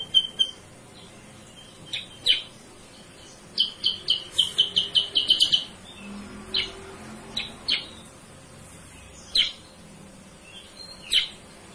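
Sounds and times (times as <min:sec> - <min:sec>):
sooty-headed bulbul chirping lure call: 0:00.0 - 0:06.8, 0:07.4 - 0:08.1, 0:08.9 - 0:09.8, 0:10.4 - 0:11.5.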